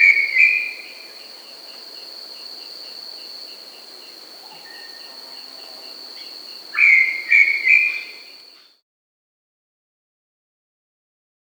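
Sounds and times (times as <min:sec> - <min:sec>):
Brown Tinamou giving loud whistled notes in South America: 0:00.0 - 0:00.8, 0:06.8 - 0:08.3
insect buzzing: 0:00.0 - 0:08.7.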